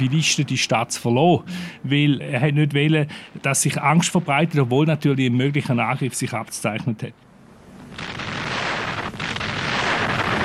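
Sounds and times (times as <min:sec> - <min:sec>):
speech: 0:00.0 - 0:07.3
bombs exploding as aircraft bomb a city: 0:07.8 - 0:10.4.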